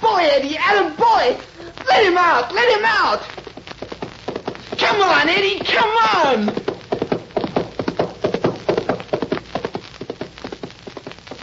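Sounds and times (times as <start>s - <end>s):
speech: 0.3s - 3.3s, 5.0s - 6.5s
horse hooves clip-clopping: 2.6s - 11.4s.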